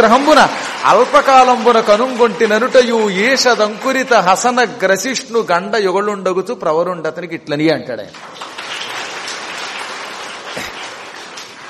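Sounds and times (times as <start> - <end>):
audience clapping during a lecture on classical poetry: 0.0 - 5.2, 8.1 - 11.6
speech: 0.0 - 8.5.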